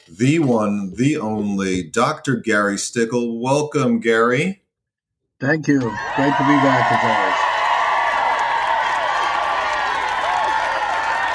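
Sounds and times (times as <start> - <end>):
speech: 0.1 - 4.6, 5.4 - 7.5
crowd cheering: 5.7 - 11.3
whoops: 5.8 - 11.3
applause: 6.1 - 11.3.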